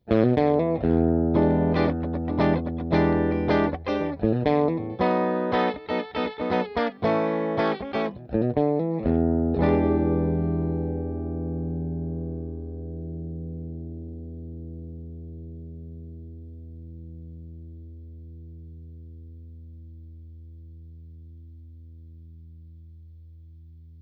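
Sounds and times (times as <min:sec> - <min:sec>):
clean G50 cable tone: 0:00.0 - 0:22.6.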